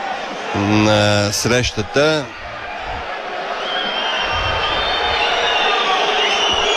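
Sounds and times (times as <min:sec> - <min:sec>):
stadium crowd of football fans roaring at a football match: 0:00.0 - 0:06.7
speech: 0:00.5 - 0:02.4
shrill whistles of football fans: 0:03.5 - 0:06.7.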